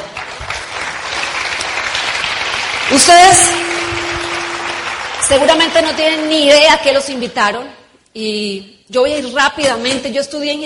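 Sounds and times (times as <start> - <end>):
crowd applauding: 0.0 - 6.8
speech: 2.9 - 3.7, 5.3 - 10.6.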